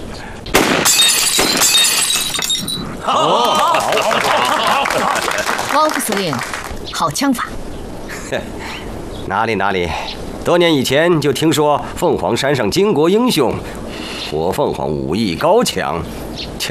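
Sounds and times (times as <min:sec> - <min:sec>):
gunshot fired during a banquet: 0:00.5 - 0:01.9
glass shattering and tinkling: 0:00.7 - 0:02.9
laughter: 0:03.0 - 0:06.7, 0:08.1 - 0:08.9
people talking excitedly: 0:03.0 - 0:16.6.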